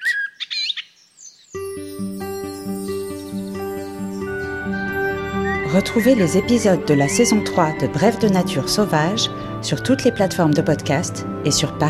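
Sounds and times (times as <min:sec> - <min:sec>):
common blackbird singing: 0:00.0 - 0:01.6, 0:02.6 - 0:10.4
sustained instrumental music: 0:01.6 - 0:11.8
speech: 0:05.7 - 0:11.8.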